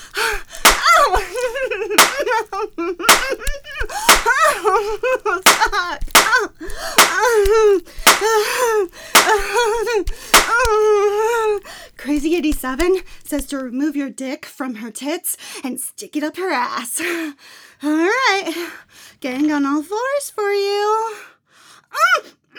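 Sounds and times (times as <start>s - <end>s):
hand slapping a face: 0.0s - 13.6s
speech: 12.6s - 21.3s, 21.9s - 22.5s.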